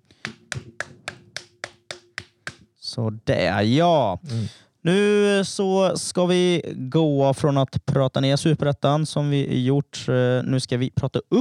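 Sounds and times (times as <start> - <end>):
crisp hand claps in a small round of applause: 0.0 - 2.7
speech: 3.0 - 11.3.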